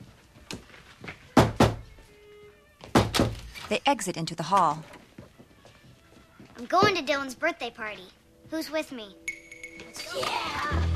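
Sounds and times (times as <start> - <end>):
knocking on bedroom doors with a lacrosse stick: 1.4 - 1.8, 2.8 - 3.4
speech: 3.7 - 5.0, 6.6 - 9.2, 10.0 - 10.8.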